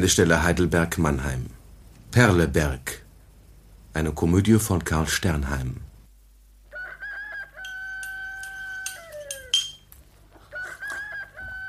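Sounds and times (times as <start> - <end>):
speech: 0.0 - 3.0, 4.0 - 5.8
rooster crowing: 6.7 - 11.6.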